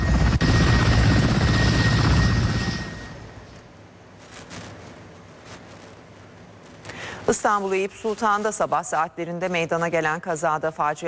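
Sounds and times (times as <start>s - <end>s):
helicopter rotor beating over engine roar: 0.0s - 3.4s
speech: 7.3s - 11.0s.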